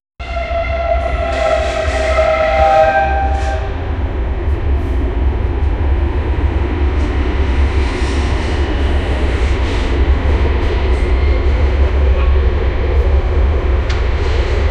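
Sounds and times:
calm train noise heard indoors: 0.2s - 14.7s.

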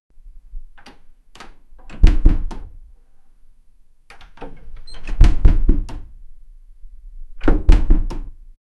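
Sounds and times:
old wooden door: 0.6s - 2.8s, 4.1s - 6.2s, 7.3s - 8.4s.

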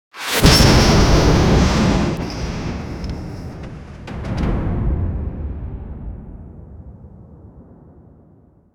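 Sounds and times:
sci-fi escape pod launch: 0.2s - 6.5s.

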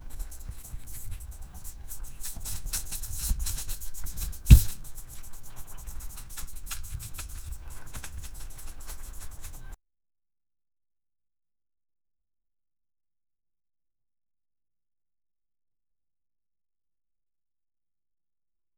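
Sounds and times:
playing cards, not shuffling: 0.0s - 9.8s.

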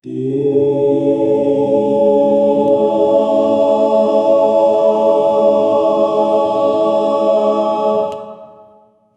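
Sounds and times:
Yoruba choral harmony: 0.0s - 9.1s.

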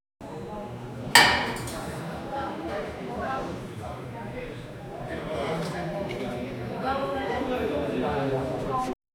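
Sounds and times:
bar ambience: 0.2s - 8.8s.

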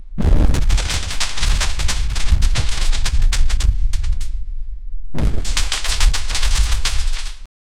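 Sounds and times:
dinosaur stomping: 0.2s - 4.2s, 5.2s - 7.4s
trees breaking: 0.4s - 4.2s, 5.2s - 7.4s.

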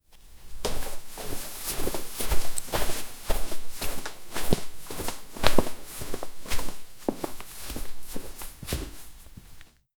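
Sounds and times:
clothing sounds of martial arts: 0.0s - 9.8s.

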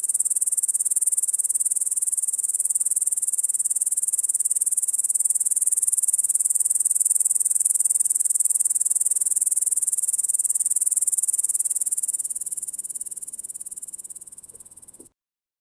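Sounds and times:
insect calling with a very high hissing trill: 0.0s - 15.1s.

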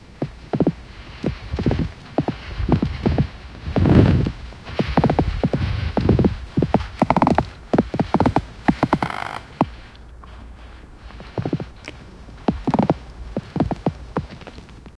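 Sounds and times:
steady outdoor wind with cold gusts: 0.0s - 14.9s.

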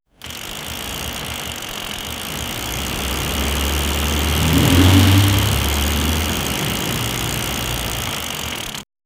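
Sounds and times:
old M80 motorbike: 0.0s - 9.0s.

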